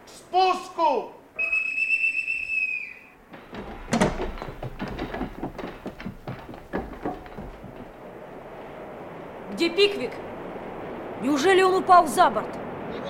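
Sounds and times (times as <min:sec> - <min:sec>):
speech: 0:00.3 - 0:01.2, 0:09.8 - 0:10.3, 0:11.2 - 0:12.6
boatswain's pipe on a sailing ship piping all hands on deck: 0:01.4 - 0:03.2
knocks and thumps: 0:03.3 - 0:08.0.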